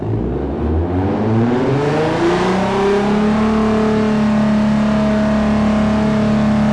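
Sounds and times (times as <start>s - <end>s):
vehicle engine revving: 0.0s - 6.7s.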